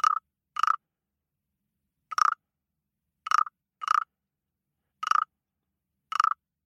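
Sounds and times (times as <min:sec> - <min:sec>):
frog croaking: 0:00.0 - 0:00.8, 0:02.1 - 0:02.4, 0:03.3 - 0:04.1, 0:05.0 - 0:05.3, 0:06.1 - 0:06.4.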